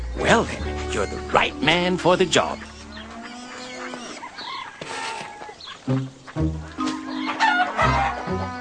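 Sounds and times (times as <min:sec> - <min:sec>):
flock of hungry chickens clucking and squawking while being fed: 0:00.0 - 0:08.6
speech: 0:00.3 - 0:02.7, 0:05.9 - 0:06.8
rooster crowing: 0:03.0 - 0:05.6, 0:07.2 - 0:08.6.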